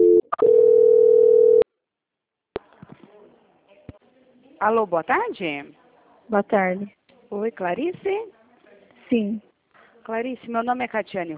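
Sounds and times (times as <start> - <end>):
telephone call-transfer beeps and tone on a bank call: 0.0 - 1.6
speech: 4.6 - 8.4, 9.1 - 9.5, 10.1 - 11.3.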